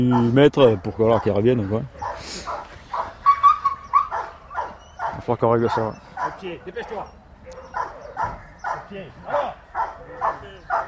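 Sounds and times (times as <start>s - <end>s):
speech: 0.0s - 2.6s, 5.3s - 7.8s, 8.9s - 10.8s
possessive dog yelping and whining at gendarmerie obedience training: 1.2s - 8.9s.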